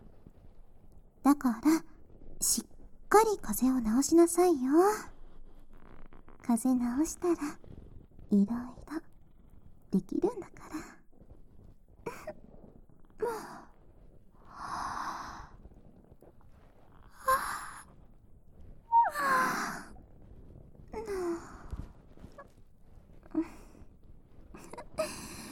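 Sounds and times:
speech: 1.2s - 5.1s, 6.5s - 7.6s, 8.3s - 9.1s, 9.9s - 10.9s
soft sighs: 12.0s - 16.2s, 17.0s - 18.0s, 18.9s - 20.3s, 20.9s - 22.5s, 23.2s - 25.5s
person yawning: 18.9s - 19.8s.

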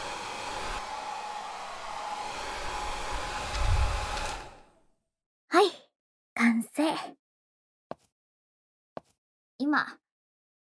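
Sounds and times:
hair dryer blowing while styling hair: 0.0s - 4.7s
speech: 9.7s - 10.0s.

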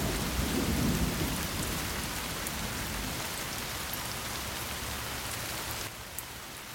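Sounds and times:
distant thunder rumbling: 0.0s - 3.3s
heavy rain downpour: 0.0s - 6.7s.

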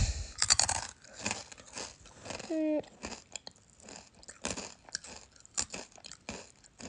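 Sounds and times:
chewing crunchy rice crackers: 0.3s - 6.8s.

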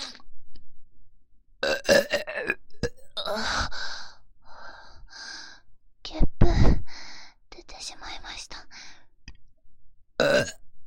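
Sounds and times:
person burping: 1.6s - 3.4s, 10.2s - 10.6s
person whispering: 7.6s - 8.7s.

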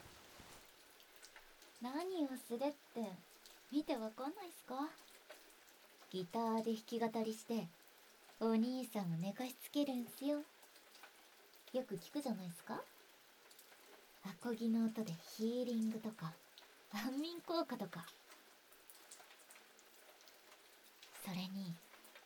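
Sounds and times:
rain pattering outside: 0.0s - 22.2s
speech: 1.8s - 5.0s, 6.1s - 7.8s, 8.4s - 10.5s, 11.7s - 12.9s, 14.2s - 18.2s, 21.2s - 21.8s.

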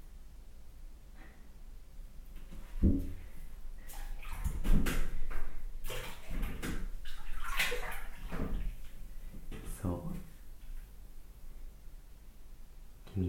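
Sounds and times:
bath water sloshing as someone gets into a tub in a tiled room: 2.6s - 11.2s.

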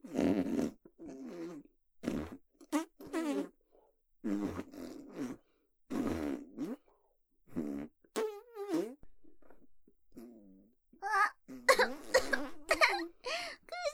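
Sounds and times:
fart sounds: 0.0s - 3.6s, 4.2s - 6.9s, 7.5s - 10.6s, 11.5s - 13.1s.

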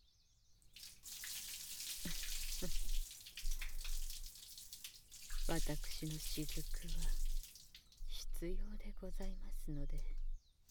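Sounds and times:
water poured for rinsing: 0.7s - 8.2s
speech: 2.1s - 2.8s, 5.5s - 7.3s, 8.4s - 10.2s.

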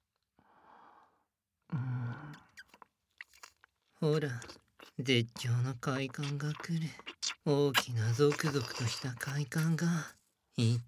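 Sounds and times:
soft wet chewing of melted gooey food: 2.6s - 10.1s
speech: 4.0s - 10.8s.

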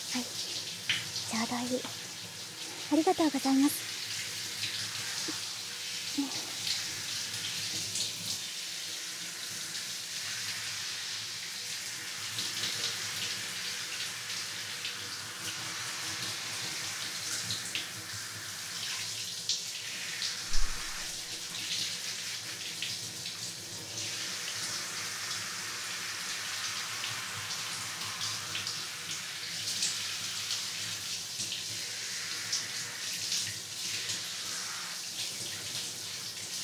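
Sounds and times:
water from a shower head spraying, rinsing a person's hair: 0.0s - 36.6s
speech: 1.5s - 2.0s, 2.9s - 3.9s
thump: 20.5s - 21.0s.

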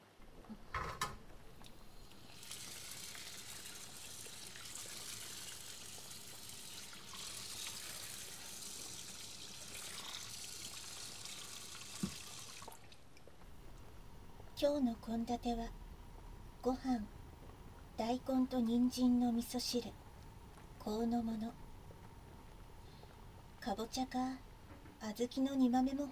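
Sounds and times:
clunk: 0.7s - 1.2s
tap water running into a vessel to be boiled: 1.0s - 13.3s
speech: 14.6s - 15.8s, 16.6s - 17.2s, 18.0s - 20.0s, 20.8s - 21.6s, 23.6s - 24.4s, 25.0s - 26.1s.

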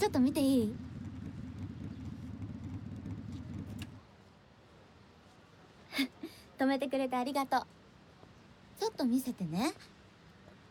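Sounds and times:
speech: 0.0s - 0.9s, 6.0s - 7.8s, 8.8s - 10.0s
motorcycle engine idling with a throbbing low rumble: 0.0s - 4.1s.

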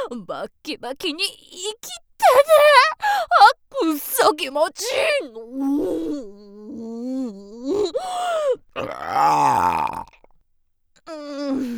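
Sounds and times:
speech: 0.1s - 6.4s, 7.3s - 10.1s
person moaning and groaning: 4.8s - 10.2s, 11.1s - 11.7s
long rumbling burp: 8.8s - 10.3s.

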